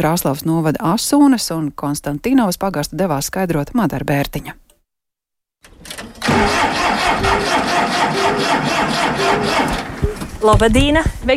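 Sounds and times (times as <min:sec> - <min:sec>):
speech: 0:00.0 - 0:04.6, 0:05.8 - 0:11.3
tractor engine cranking and running: 0:05.6 - 0:11.1.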